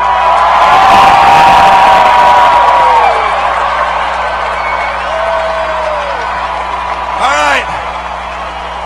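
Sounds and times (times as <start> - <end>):
stadium crowd screaming and cheering at a player's backflip: 0.0 - 8.8
whoops and shrieks from the crowd: 0.3 - 3.6, 4.4 - 6.3.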